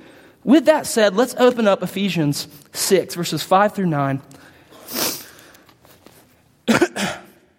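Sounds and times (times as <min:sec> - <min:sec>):
speech: 0:00.4 - 0:05.0
person coughing: 0:06.6 - 0:07.5.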